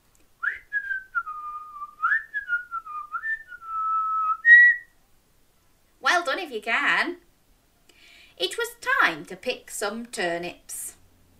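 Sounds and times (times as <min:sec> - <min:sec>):
person whistling a short tune: 0:00.4 - 0:04.9
speech: 0:06.4 - 0:07.2, 0:08.4 - 0:10.9.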